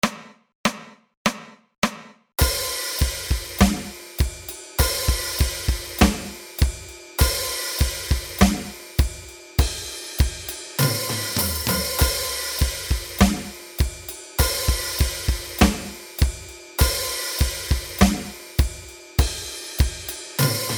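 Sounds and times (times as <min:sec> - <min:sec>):
drums playing a metal dirge jam: 0:00.0 - 0:20.7.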